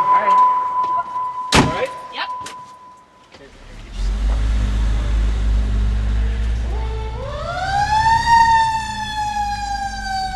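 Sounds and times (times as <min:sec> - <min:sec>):
short electronic beeps: 0:00.0 - 0:03.2
heavy fire truck engine rumbling: 0:03.4 - 0:10.3
40-foot fire truck siren wailing, responding to a call: 0:06.2 - 0:10.3.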